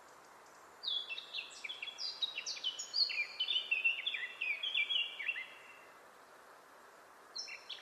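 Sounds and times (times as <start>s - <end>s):
Eurasian blackcap Sylvia atricapilla warbling song: 0.0s - 5.7s, 7.4s - 7.7s.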